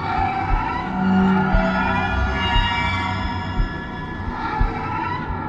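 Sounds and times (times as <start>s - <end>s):
inhuman shriek like screeching metal on metal: 0.0s - 5.3s.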